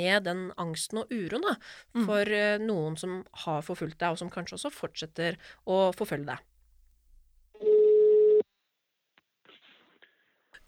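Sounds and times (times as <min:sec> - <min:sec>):
speech: 0:00.0 - 0:06.5
ringback tone on an outgoing phone call: 0:07.6 - 0:08.4.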